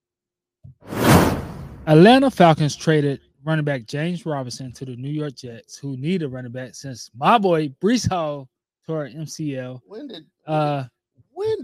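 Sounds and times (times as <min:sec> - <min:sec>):
whoosh transition sound effect: 0:00.8 - 0:02.3
speech: 0:01.8 - 0:11.6.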